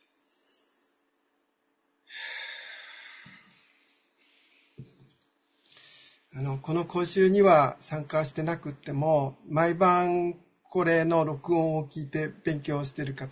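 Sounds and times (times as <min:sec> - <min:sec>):
soft breathing: 0:00.2 - 0:01.0, 0:02.1 - 0:06.4
deep breath inhale during a lecture-course exercise: 0:02.1 - 0:04.8, 0:05.6 - 0:06.3
speech: 0:06.4 - 0:13.2.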